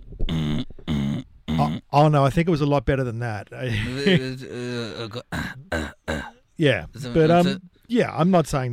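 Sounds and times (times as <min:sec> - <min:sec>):
speech: 0:01.9 - 0:05.9, 0:06.6 - 0:08.7
recorded coughing played from a phone: 0:05.2 - 0:06.4.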